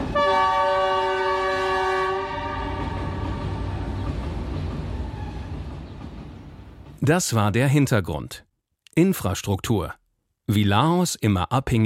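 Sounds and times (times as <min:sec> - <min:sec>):
high-speed train horn blast: 0:00.0 - 0:04.0
high-speed train rushing past: 0:00.0 - 0:07.7
speech: 0:07.1 - 0:11.8.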